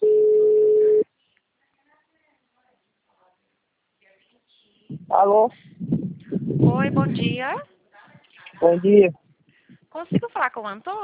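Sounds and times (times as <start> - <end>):
ringing tone on an outgoing VoIP phone call: 0.0 - 1.0
speech: 5.2 - 6.0, 6.7 - 7.7, 8.6 - 9.2, 10.0 - 11.0.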